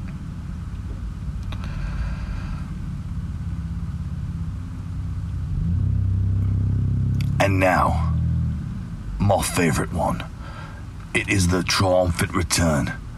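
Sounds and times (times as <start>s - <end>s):
car engine idling and pulling out of a parking space in a parking lot: 0.0s - 13.1s
speech: 7.4s - 8.1s, 9.3s - 10.3s, 11.2s - 13.0s.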